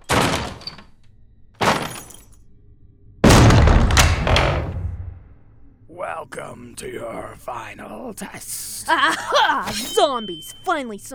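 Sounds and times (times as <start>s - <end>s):
door crashing down: 0.0s - 0.9s, 1.6s - 2.3s, 3.2s - 5.2s
heavy thudding blows on a door: 3.2s - 5.2s
speech: 6.1s - 11.1s.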